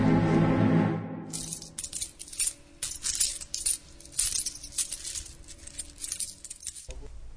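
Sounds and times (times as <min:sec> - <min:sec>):
low tone: 0:00.0 - 0:02.0
thirty silver coins clinking and jingling as they are paid out: 0:01.3 - 0:07.0.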